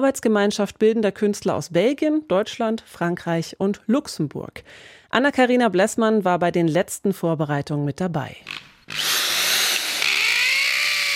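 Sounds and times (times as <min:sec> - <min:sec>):
speech: 0:00.0 - 0:09.0
power drill driving screws into crumbly old barn stone: 0:08.5 - 0:11.1.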